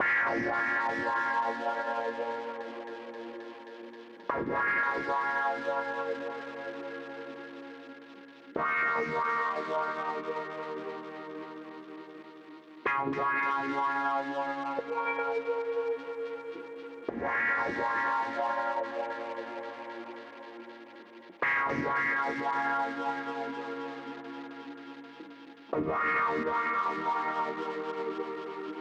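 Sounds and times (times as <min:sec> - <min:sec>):
clavinet with tape delay: 0:00.0 - 0:07.5, 0:08.6 - 0:12.2, 0:12.9 - 0:28.7.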